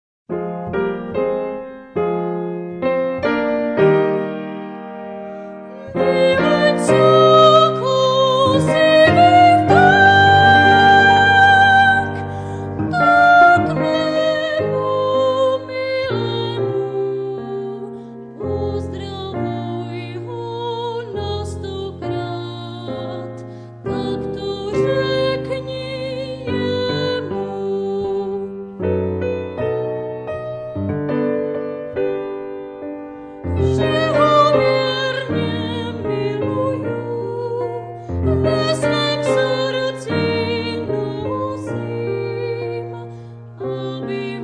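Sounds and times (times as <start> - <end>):
piano accompaniment: 0.3 - 44.4
person singing: 5.7 - 28.8, 33.4 - 44.4.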